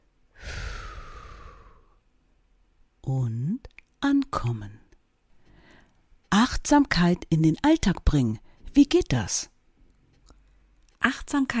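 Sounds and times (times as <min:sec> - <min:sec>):
slow breath from a mindfulness exercise: 0:00.3 - 0:02.1, 0:05.3 - 0:06.1
speech: 0:03.1 - 0:03.7, 0:06.7 - 0:09.5, 0:11.0 - 0:11.5.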